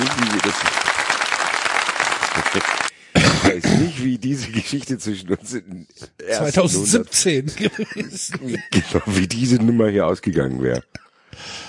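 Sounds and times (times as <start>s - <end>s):
crowd applause sound effect: 0.0s - 2.9s
laughter: 2.2s - 2.9s, 7.4s - 9.6s
speech: 3.6s - 11.6s.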